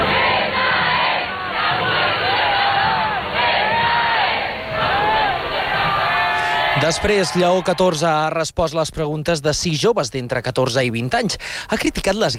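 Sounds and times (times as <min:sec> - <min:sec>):
large crowd cheering and shouting: 0:00.0 - 0:08.3
speech: 0:06.8 - 0:12.3.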